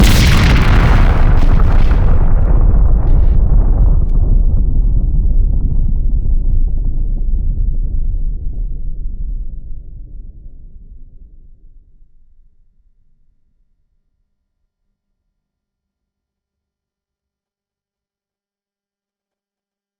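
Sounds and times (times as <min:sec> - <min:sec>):
big nuclear explosion: 0:00.0 - 0:09.0.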